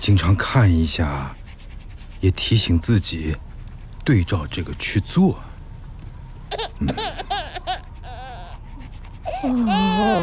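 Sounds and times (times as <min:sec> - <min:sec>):
speech: 0:00.0 - 0:01.4, 0:02.2 - 0:05.5, 0:06.5 - 0:07.5, 0:09.4 - 0:10.2
baby crying and babbling: 0:06.5 - 0:10.2.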